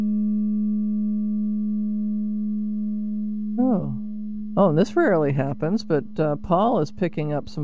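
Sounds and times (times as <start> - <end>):
Tibetan singing bowl ringing: 0.0 - 4.7
speech: 3.6 - 4.0, 4.6 - 7.6.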